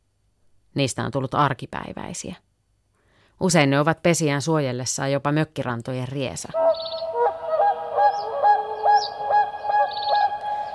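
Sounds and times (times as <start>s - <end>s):
speech: 0.8s - 2.5s, 3.4s - 7.1s
whooper swans calling with trumpeting honks: 6.6s - 10.7s.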